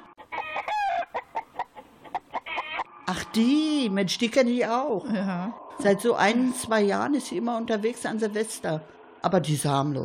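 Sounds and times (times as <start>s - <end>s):
rooster crowing: 0.0s - 2.9s
chickens clucking on motorcycle handlebars: 0.0s - 4.4s
speech: 3.1s - 10.0s.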